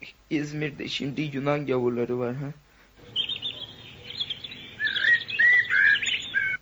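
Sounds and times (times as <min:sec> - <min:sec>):
faint hiss: 0:00.0 - 0:06.6
speech: 0:00.3 - 0:02.6
small bird singing high chirps and warbling trills: 0:03.0 - 0:06.6.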